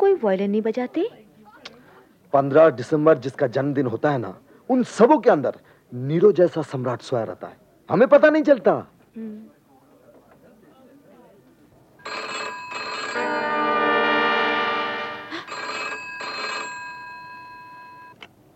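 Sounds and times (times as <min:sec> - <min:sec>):
speech: 0:00.2 - 0:01.2, 0:02.3 - 0:09.6
telephone ringing: 0:12.0 - 0:18.2.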